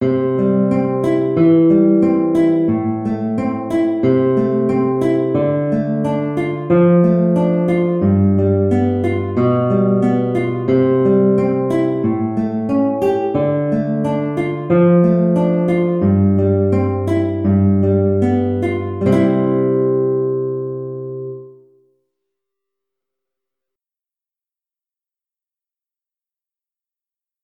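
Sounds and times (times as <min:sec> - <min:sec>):
guitar piece: 0:00.0 - 0:21.9.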